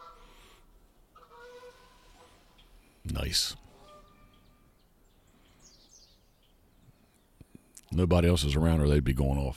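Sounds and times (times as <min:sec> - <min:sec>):
geese honking as they fly in toward a yard: 0:00.0 - 0:00.5, 0:01.1 - 0:02.7, 0:03.6 - 0:04.8
speech: 0:03.1 - 0:03.6, 0:08.0 - 0:09.5.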